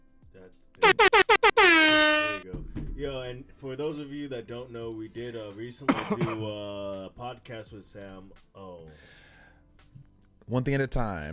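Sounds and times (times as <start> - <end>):
loud air horn blasts: 0.8 - 2.4
speech: 3.3 - 9.2, 10.5 - 11.3.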